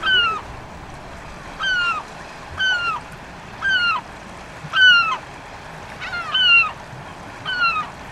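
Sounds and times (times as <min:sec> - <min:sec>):
lesser black-backed gull calling in Belfast: 0:00.0 - 0:00.6, 0:01.6 - 0:04.1, 0:04.7 - 0:05.2, 0:06.0 - 0:06.8, 0:07.4 - 0:08.0
low outdoor rumble: 0:00.0 - 0:04.0.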